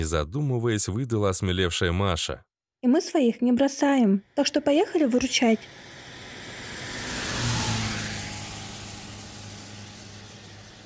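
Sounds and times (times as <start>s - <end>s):
speech: 0.0s - 5.9s
car engine pulling away out of a courtyard: 5.2s - 10.8s.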